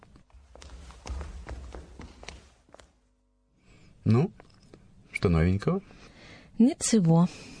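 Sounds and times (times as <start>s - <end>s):
slow footsteps on a wooden parquet floor: 0.0s - 3.2s
speech: 4.0s - 4.4s, 5.2s - 7.5s.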